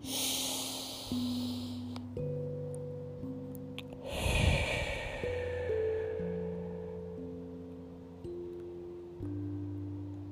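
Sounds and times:
slow deep breath drawn in and released: 0:00.0 - 0:02.0, 0:04.0 - 0:07.2
soft sustained ambient drone of held low tones: 0:00.0 - 0:10.3.

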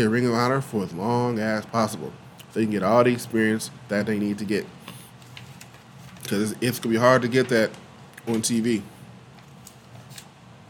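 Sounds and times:
speech: 0:00.0 - 0:04.8, 0:06.3 - 0:08.9
paper notes being shuffled: 0:04.9 - 0:08.7.

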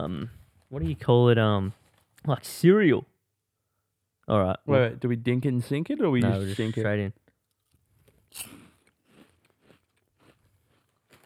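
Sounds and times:
speech: 0:00.0 - 0:03.1, 0:04.3 - 0:07.2, 0:08.3 - 0:08.6
biting and chewing liquorice coins: 0:07.5 - 0:11.2.

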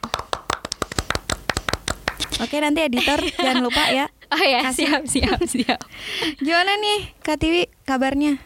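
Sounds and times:
people clapping hands: 0:00.0 - 0:02.5
speech: 0:02.4 - 0:08.4
laughter: 0:03.0 - 0:04.1.

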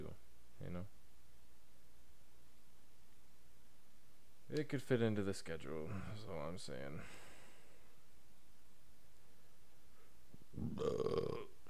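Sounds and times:
speech: 0:00.0 - 0:01.0, 0:04.5 - 0:07.3, 0:10.6 - 0:11.5
loud drawn-out burp: 0:10.6 - 0:11.6.

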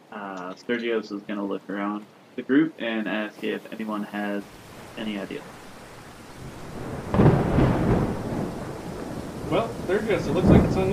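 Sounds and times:
rain-like storm noise: 0:00.0 - 0:10.9
speech: 0:00.6 - 0:05.6, 0:09.5 - 0:10.9
loud crack of thunder rolling into a deep rumble: 0:04.5 - 0:10.9.

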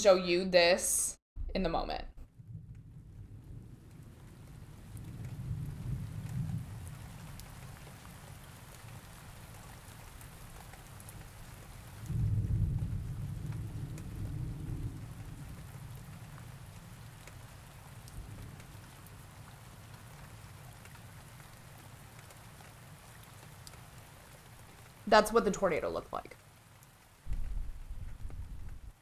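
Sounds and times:
speech: 0:00.0 - 0:02.2, 0:25.1 - 0:26.4
deep rolls of thunder rumbling: 0:01.4 - 0:09.7, 0:11.4 - 0:21.3, 0:27.3 - 0:28.9
steady rain: 0:02.2 - 0:28.9.

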